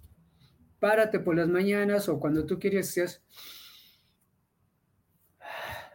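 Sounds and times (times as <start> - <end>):
speech: 0.8 - 3.6
deep slow breath: 3.3 - 4.2, 5.4 - 5.9.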